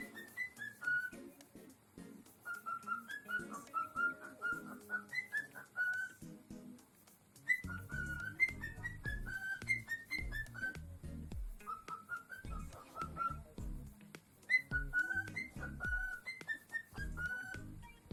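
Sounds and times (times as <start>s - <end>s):
Lutino cockatiel whistling: 0.0s - 1.5s, 2.4s - 6.2s, 7.4s - 10.9s, 11.6s - 13.6s, 14.4s - 18.1s.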